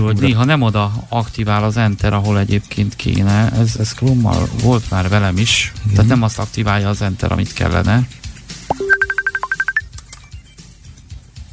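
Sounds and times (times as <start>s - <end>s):
speech: 0.0s - 8.8s
rising blip: 8.7s - 9.9s
group video call digital ringtone: 8.7s - 10.0s.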